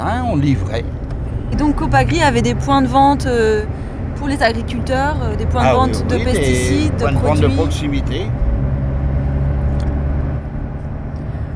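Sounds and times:
speech: 0.0 - 8.4
car engine and road rumble driving through open farmland countryside in central Brittany: 0.0 - 11.5.

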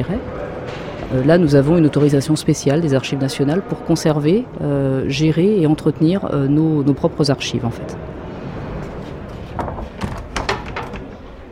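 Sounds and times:
speech: 0.0 - 8.2
small wooden door creaking and bumping shut: 9.5 - 11.2.

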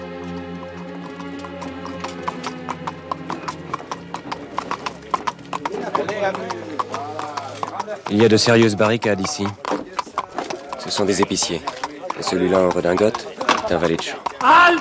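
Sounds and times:
sustained tonal background: 0.0 - 6.8
horse hooves clip-clopping: 0.0 - 14.7
speech: 6.2 - 6.6, 8.1 - 9.6, 10.9 - 14.7.

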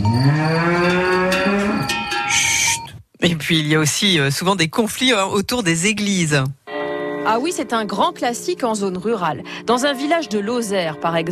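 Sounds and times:
cow mooing in pasture: 0.0 - 2.0
cowbells clinking in pasture: 0.0 - 2.9
speech: 3.5 - 6.6, 7.2 - 11.3.

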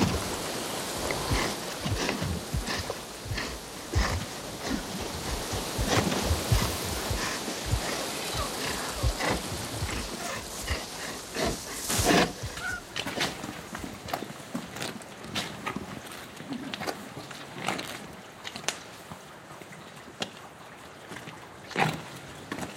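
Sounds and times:
melting snow dripping and sliding off rooftops: 0.0 - 13.9
steady watery hiss: 0.0 - 19.2.

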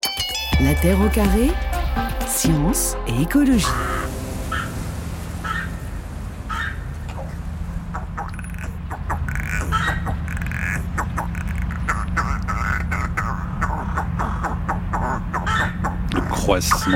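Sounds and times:
speech: 0.6 - 4.2, 16.6 - 16.9
low steady rumble: 0.6 - 16.2
crow cawing harshly: 5.4 - 5.8, 6.4 - 6.8, 7.9 - 16.0.

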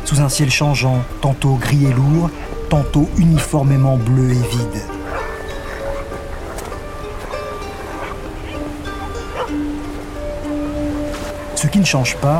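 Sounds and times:
voices: 0.0 - 5.2
incessant wind on a small tropical atoll: 0.0 - 12.3
steady roar of powerful surf on a small tropical atoll: 0.0 - 12.3
speech: 0.1 - 5.0, 11.6 - 12.3
villagers' dogs barking and yipping on a small tropical atoll: 4.9 - 10.8.

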